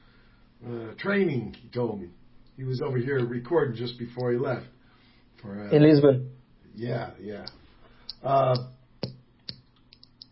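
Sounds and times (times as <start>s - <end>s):
speech: 0.6s - 4.8s, 5.4s - 7.6s, 8.2s - 9.2s
small pen being clicked: 9.5s - 10.3s.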